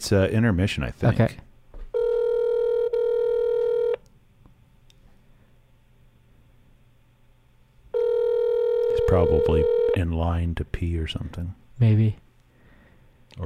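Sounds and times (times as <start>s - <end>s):
speech: 0.0s - 1.5s, 9.1s - 12.2s
electronic phone ringback tone: 1.9s - 4.0s, 7.9s - 10.0s.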